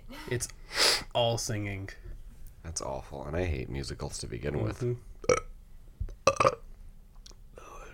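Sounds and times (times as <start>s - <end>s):
speech: 0.1s - 5.1s
person burping: 5.2s - 5.5s, 6.2s - 6.6s.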